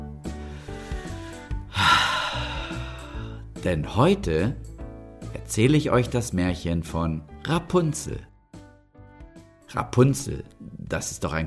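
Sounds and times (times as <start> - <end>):
deep breath in and out: 0.3 - 3.6
speech: 3.6 - 4.7, 5.5 - 8.3, 9.7 - 11.4.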